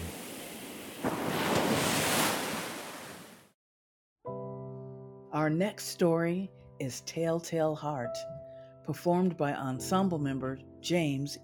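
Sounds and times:
ocean waves breaking on shore: 0:00.0 - 0:03.6
speech: 0:05.4 - 0:11.4.

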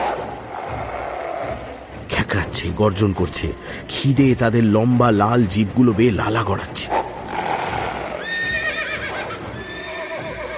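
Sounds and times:
panicked horses neighing and whinnying: 0:00.0 - 0:01.8, 0:06.9 - 0:10.5
horses stamping: 0:00.0 - 0:10.5
speech: 0:02.3 - 0:07.0.

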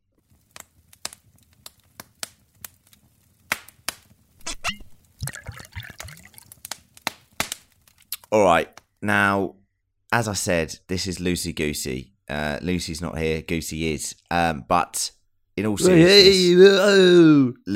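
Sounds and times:
whiskey glugging: 0:04.5 - 0:06.4
whiskey pouring into a glass: 0:05.2 - 0:06.5
speech: 0:08.4 - 0:17.7.

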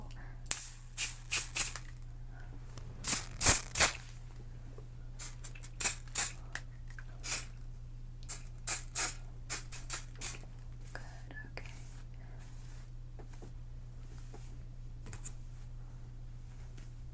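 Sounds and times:
faint steady hum: 0:00.0 - 0:17.1
hairspray being sprayed onto hair: 0:00.5 - 0:01.9, 0:03.0 - 0:04.2, 0:05.2 - 0:06.4, 0:07.2 - 0:07.5, 0:08.3 - 0:10.4.

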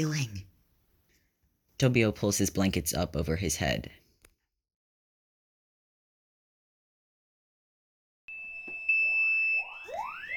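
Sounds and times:
speech: 0:00.0 - 0:00.4, 0:01.8 - 0:04.0
kitchen smoke detector fire alarm piercing high tone: 0:08.3 - 0:10.3.

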